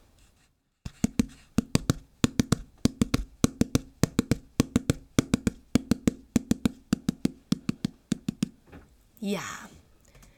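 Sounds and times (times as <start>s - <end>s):
hands knocking on the floor imitating a galloping horse: 0.9s - 8.8s
speech: 9.2s - 9.7s.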